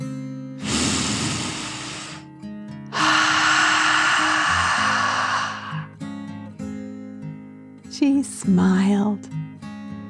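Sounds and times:
deep slow breath drawn in and let out: 0.6s - 2.2s, 2.9s - 6.0s
speech: 8.0s - 9.4s.

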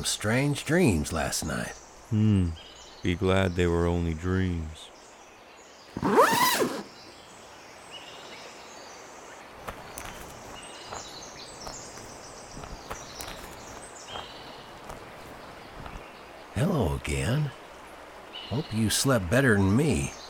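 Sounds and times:
speech: 0.0s - 4.9s, 6.0s - 6.7s, 16.6s - 17.6s, 18.5s - 20.2s
deer letting out a loud rough call: 6.0s - 7.0s.

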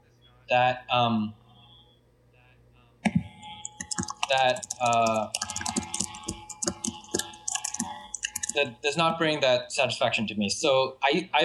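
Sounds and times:
speech: 0.5s - 1.4s, 4.3s - 5.4s, 8.6s - 11.4s
computer keyboard typing: 3.0s - 9.2s.

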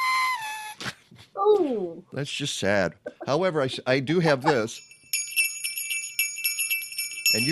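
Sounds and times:
speech: 1.4s - 4.9s, 7.3s - 7.5s
small jingle bells shaken: 4.5s - 7.5s.

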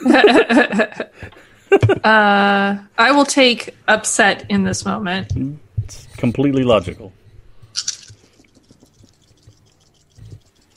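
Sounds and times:
laughter: 0.0s - 2.1s
speech: 0.0s - 7.2s
dice rattling and tumbling across a surface: 7.7s - 10.7s.

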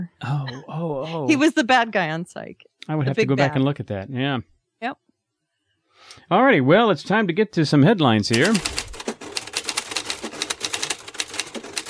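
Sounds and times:
speech: 0.2s - 5.0s, 6.0s - 8.8s
rapid typewriter keystrokes: 8.3s - 11.8s.

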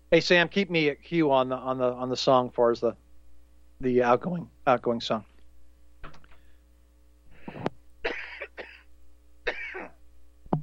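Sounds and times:
faint steady hum: 0.0s - 10.6s
speech: 0.1s - 3.0s, 3.8s - 5.3s
man coughing in a rough harsh fit: 8.0s - 10.0s.

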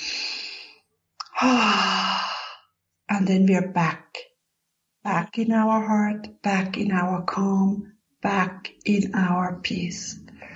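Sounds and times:
deep breath during a calming hands-on-heart exercise: 0.0s - 0.8s, 1.4s - 2.7s
speech: 1.4s - 2.0s, 3.1s - 4.0s, 5.0s - 10.4s.

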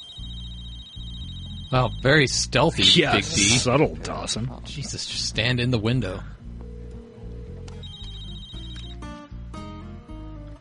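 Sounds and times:
telephone ringing with electronic ringtone: 0.0s - 1.8s, 6.6s - 8.9s
speech: 1.7s - 6.4s.

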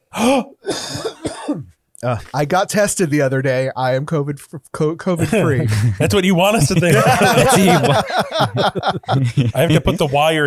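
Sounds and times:
person coughing harshly: 0.1s - 1.7s
speech: 0.2s - 1.2s, 2.0s - 10.4s
laughter: 5.2s - 10.4s.

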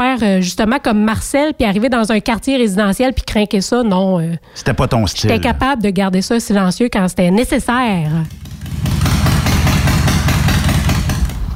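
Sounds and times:
speech: 0.0s - 8.4s
Harley motorcycle engine idling: 8.2s - 11.5s.

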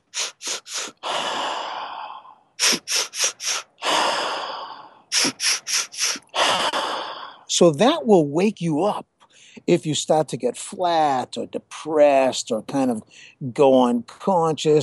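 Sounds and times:
long exaggerated sigh of relief in Sufi breathing technique: 0.0s - 7.5s
sharp quick nasal inhales in Sufi breathing technique: 0.0s - 7.5s
speech: 7.6s - 14.8s.

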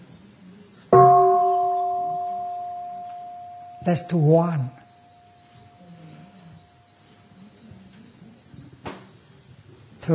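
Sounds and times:
single bell struck by a bell master: 1.0s - 5.5s
speech: 3.9s - 4.8s.

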